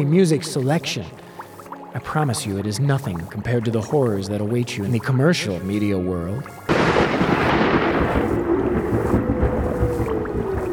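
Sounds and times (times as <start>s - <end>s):
speech: 0.0s - 1.3s, 2.0s - 7.3s
windy blustery noise of a thunderstorm: 6.6s - 10.7s
deep rolling thunder of a thunderstorm: 6.7s - 10.7s.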